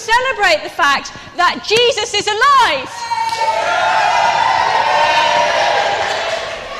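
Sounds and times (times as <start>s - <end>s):
speech: 0.1s - 4.5s
large crowd cheering and whooping in celebration: 2.9s - 6.7s.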